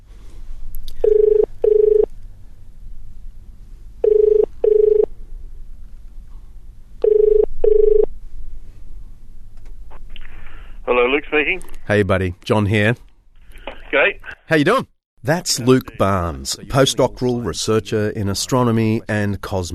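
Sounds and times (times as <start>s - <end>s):
low hum: 0.0s - 19.7s
telephone ringing tone as a call is placed: 1.0s - 2.1s, 4.0s - 5.1s, 7.0s - 8.1s
speech: 11.3s - 13.1s, 13.9s - 19.7s.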